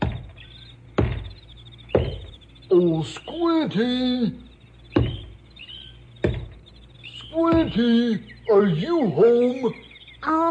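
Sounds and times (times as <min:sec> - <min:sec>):
solid knocks on a wooden door: 0:00.0 - 0:02.4, 0:04.9 - 0:05.3, 0:06.2 - 0:06.6
speech: 0:02.7 - 0:04.5, 0:07.4 - 0:10.4.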